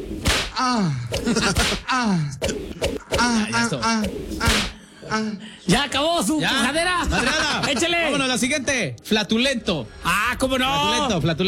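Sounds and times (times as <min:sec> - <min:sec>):
voice imitating a whip crack: 0:00.2 - 0:04.8
swooping vocal sounds: 0:00.4 - 0:05.4
speech: 0:00.6 - 0:11.4
laughter: 0:01.2 - 0:02.4, 0:06.9 - 0:08.4.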